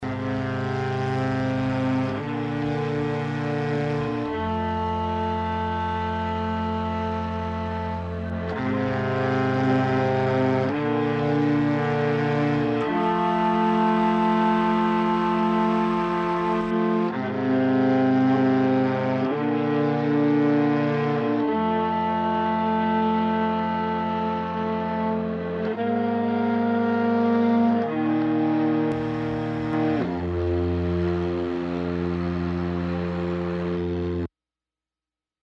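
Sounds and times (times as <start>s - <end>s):
string instrument: 0.0s - 34.3s.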